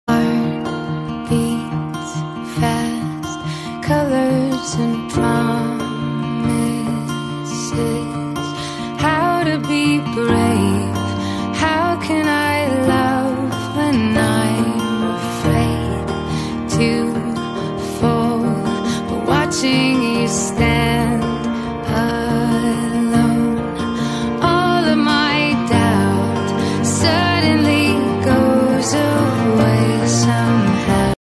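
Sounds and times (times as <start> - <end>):
background music: 0.1 - 31.1.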